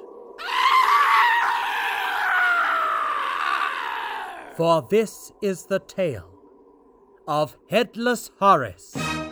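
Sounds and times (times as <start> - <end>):
villagers screaming: 0.4 - 4.6
speech: 4.6 - 6.3, 7.3 - 9.0.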